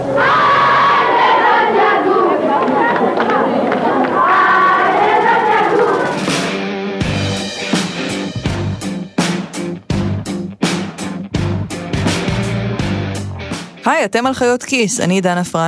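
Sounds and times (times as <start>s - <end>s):
packed basketball crowd roaring and chanting: 0.0s - 8.3s
sharp rhythmic clapping of a basketball crowd: 1.8s - 13.8s
speech: 14.0s - 15.6s.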